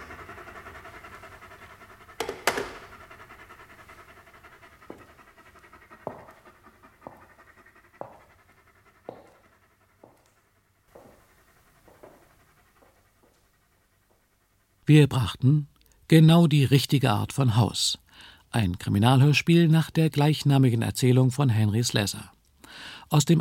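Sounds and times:
dogs panting: 0.0 - 15.4
speech: 14.9 - 23.3.

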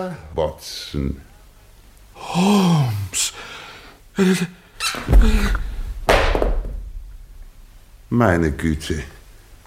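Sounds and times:
speech: 0.0 - 1.3, 2.2 - 3.6, 4.2 - 5.7, 8.1 - 9.2
man's heavy body thudding to the floor after fainting: 5.0 - 7.1
dull resonant bump: 5.1 - 7.9.

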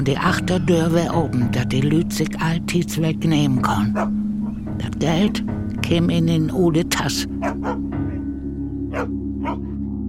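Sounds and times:
speech: 0.0 - 8.0
farm watchdog barking: 3.9 - 4.6, 7.4 - 8.2, 8.9 - 9.8.

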